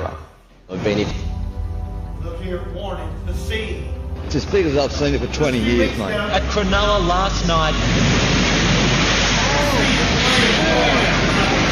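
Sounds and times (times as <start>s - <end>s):
speech: 0.8s - 1.3s, 2.4s - 8.2s
giant ocean waves crashing through glass windows of a waterfront restaurant: 3.8s - 11.6s.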